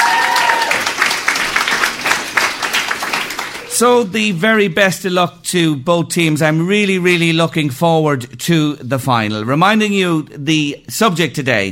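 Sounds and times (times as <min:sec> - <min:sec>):
audience applause for sponsors at a debate competition: 0:00.0 - 0:03.8
speech: 0:03.8 - 0:11.7.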